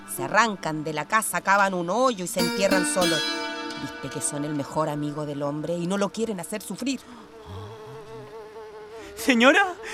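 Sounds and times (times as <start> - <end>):
speech: 0.2 - 7.6, 9.2 - 9.9
flies buzzing: 2.4 - 9.9.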